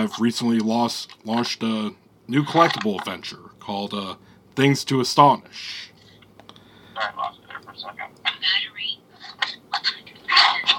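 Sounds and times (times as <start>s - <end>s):
speech: 0.0s - 5.9s
low hum: 0.0s - 10.7s
choppy garbled voice over a thin Bluetooth phone line during a phone interview: 7.0s - 10.7s.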